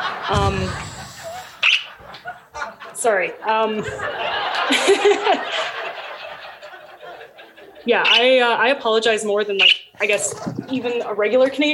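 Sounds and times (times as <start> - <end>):
laughter: 0.0 - 8.8, 10.0 - 11.5
speech: 0.3 - 0.9, 3.0 - 5.7, 7.8 - 11.7
pet bird squawking: 1.2 - 2.0, 7.9 - 8.4, 9.6 - 10.8.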